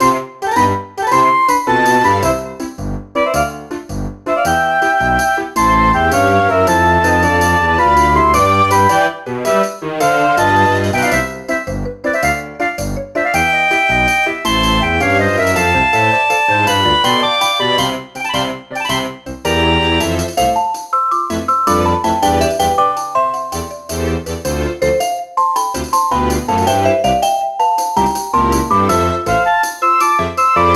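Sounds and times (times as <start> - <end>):
restored piano notes: 0.0 - 30.7.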